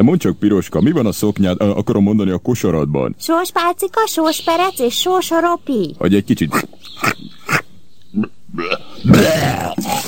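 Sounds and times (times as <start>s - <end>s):
speech: 0.0s - 7.4s, 8.1s - 10.0s
wolf vomiting with retching and gagging: 6.5s - 10.0s.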